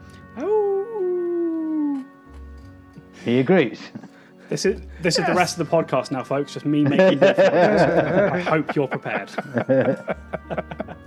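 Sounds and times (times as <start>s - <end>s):
speech: 0.4s - 0.6s, 3.2s - 10.8s
person imitating a dog's howl: 0.4s - 2.1s
laughter: 3.0s - 11.0s.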